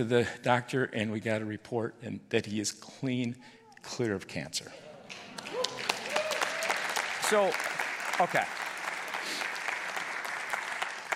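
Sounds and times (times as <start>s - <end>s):
speech: 0.0s - 5.6s, 7.3s - 8.6s
church congregation clapping: 5.0s - 11.1s.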